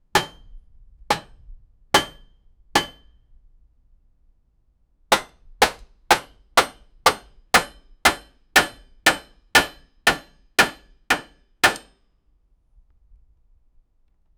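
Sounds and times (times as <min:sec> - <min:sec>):
blacksmith hammer hitting iron: 0:00.2 - 0:00.5, 0:01.1 - 0:01.4, 0:02.0 - 0:03.1, 0:05.1 - 0:11.9.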